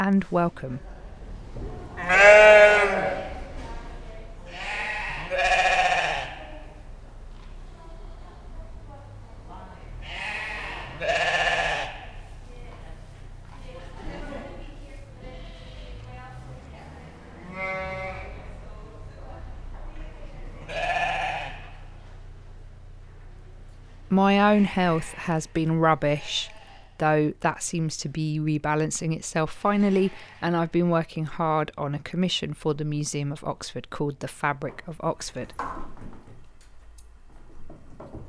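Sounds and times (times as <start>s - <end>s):
speech: 0.0s - 0.9s, 1.6s - 3.1s, 24.2s - 35.8s
low murmur of crowd noise: 0.9s - 22.0s
sheep bleating at a wool festival: 2.0s - 3.5s, 4.4s - 6.8s, 9.9s - 12.3s, 15.0s - 16.1s, 17.3s - 18.6s, 20.6s - 21.9s, 24.6s - 27.0s.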